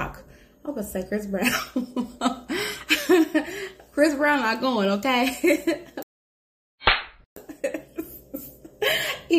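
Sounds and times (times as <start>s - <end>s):
speech: 0.7s - 6.0s
sharp loud slap sound effect: 6.8s - 7.2s.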